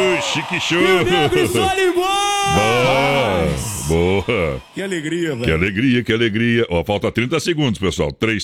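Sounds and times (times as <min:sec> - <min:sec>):
audience shouting and whooping with joy: 0:00.0 - 0:05.9
speech: 0:00.4 - 0:08.4.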